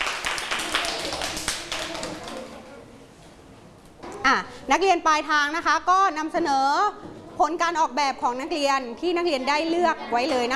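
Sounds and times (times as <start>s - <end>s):
students clapping: 0.0s - 2.7s
speech: 4.3s - 10.5s.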